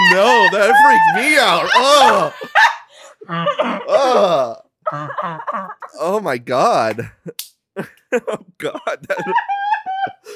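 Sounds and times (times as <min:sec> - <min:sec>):
laughter: 0:00.0 - 0:06.2, 0:06.9 - 0:10.3
speech: 0:00.2 - 0:02.7, 0:03.3 - 0:10.3
person imitating a wild animal's snarl: 0:03.2 - 0:05.8.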